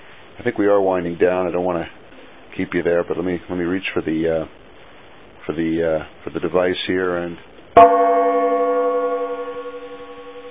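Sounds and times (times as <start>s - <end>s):
speech: 0.4s - 2.0s, 2.6s - 4.6s, 5.5s - 8.4s
struck gong ringing: 7.8s - 10.4s.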